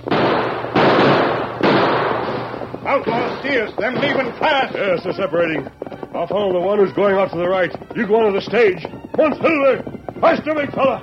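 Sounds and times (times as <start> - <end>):
gunshots fired at outlaws near a stagecoach on a hillside trail: 0.0 - 5.4
speech: 2.9 - 11.0.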